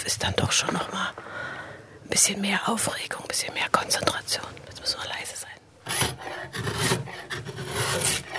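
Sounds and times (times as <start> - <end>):
speech: 0.1 - 1.3, 2.1 - 5.0
knife carving light wood clamped in a vice: 5.9 - 8.3.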